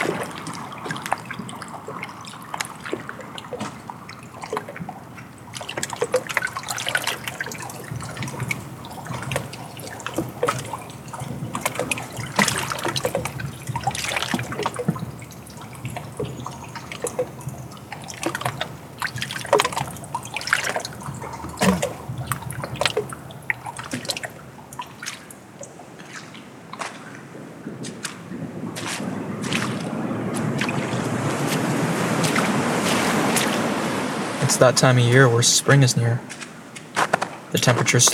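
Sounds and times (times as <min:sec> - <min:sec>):
splashy drips and gurgles: 0:00.0 - 0:38.1
water trickling and burbling over and around obstacles: 0:00.0 - 0:38.1
speech: 0:34.6 - 0:36.4, 0:37.6 - 0:38.1.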